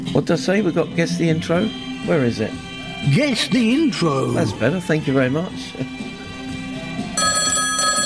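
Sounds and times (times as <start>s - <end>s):
speech: 0.2s - 6.1s
telephone ringing in electronic tones: 7.1s - 8.0s.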